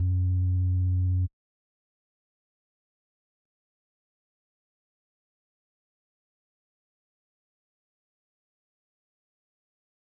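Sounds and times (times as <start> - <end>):
1 kHz sine wave tone: 0.0 - 1.3.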